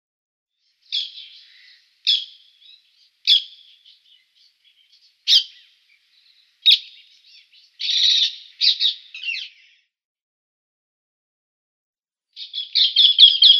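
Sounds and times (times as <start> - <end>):
Rose-ringed parakeet calls: 0.9 - 9.8, 12.4 - 13.5.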